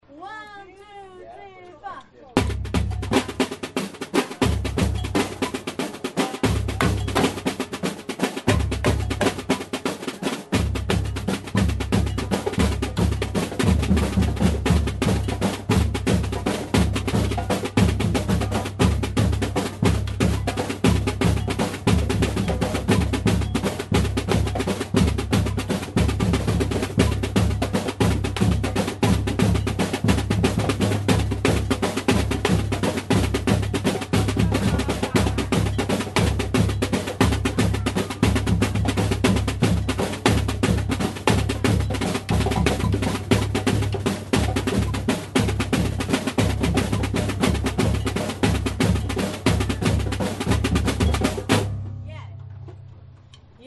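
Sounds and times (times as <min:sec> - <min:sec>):
afrobeat samba carnival music: 0:00.0 - 0:52.3
laughter: 0:33.9 - 0:38.7.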